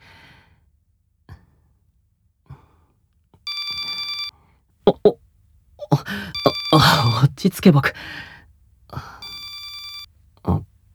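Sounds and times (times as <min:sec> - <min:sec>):
phone ringtone electronic trill: 0:03.5 - 0:04.3, 0:06.0 - 0:08.0, 0:09.2 - 0:10.1
speech: 0:04.9 - 0:05.2, 0:05.9 - 0:08.3.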